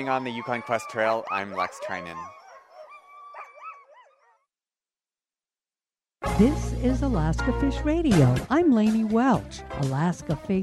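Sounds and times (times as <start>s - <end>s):
speech: 0.0s - 2.4s, 6.4s - 10.6s
dog whining and yipping: 0.0s - 4.4s.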